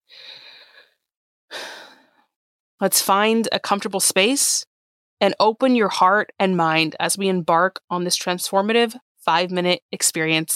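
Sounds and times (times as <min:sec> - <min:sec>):
slow deep breaths during a guided relaxation exercise: 0:00.0 - 0:02.3
speech: 0:02.8 - 0:10.5.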